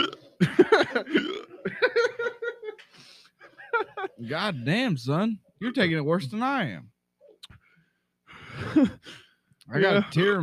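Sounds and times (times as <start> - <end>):
person hiccuping from eating spicy food: 0.0 - 0.3, 1.1 - 1.6
laughter: 0.4 - 4.3
strained breaths: 2.8 - 3.5, 7.5 - 9.6
speech: 4.3 - 6.9, 8.7 - 10.4.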